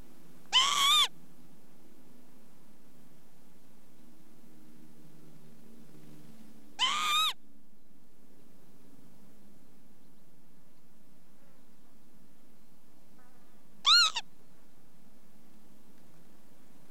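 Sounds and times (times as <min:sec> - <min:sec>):
faint low hum: 0:00.0 - 0:16.8
Northern Lapwing calls: 0:00.5 - 0:01.1, 0:06.8 - 0:07.4, 0:13.8 - 0:14.3.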